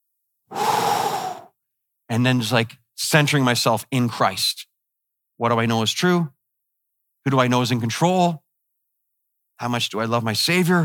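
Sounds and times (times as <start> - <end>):
single deep breath: 0.5 - 1.6
speech: 2.1 - 4.7, 5.4 - 6.4, 7.2 - 8.4, 9.6 - 10.8.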